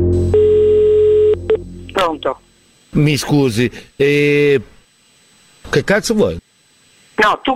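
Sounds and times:
telephone line tone while placing a call: 0:00.2 - 0:02.0
speech: 0:03.0 - 0:04.7, 0:05.7 - 0:06.4, 0:07.2 - 0:07.5.

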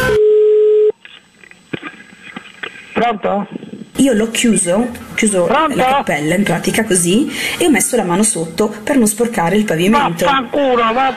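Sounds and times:
telephone line tone as a call is placed: 0:00.0 - 0:01.0
speech: 0:03.0 - 0:11.1.

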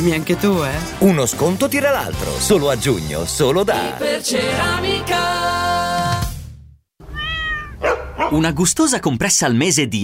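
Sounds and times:
speech: 0:00.0 - 0:05.9, 0:08.3 - 0:10.0
cat meowing: 0:07.0 - 0:08.2.

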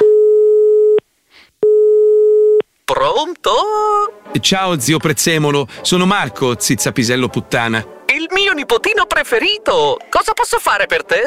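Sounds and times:
electronic telephone line tone while a call is being transferred: 0:00.0 - 0:01.0, 0:01.6 - 0:02.6
speech: 0:02.9 - 0:11.2.

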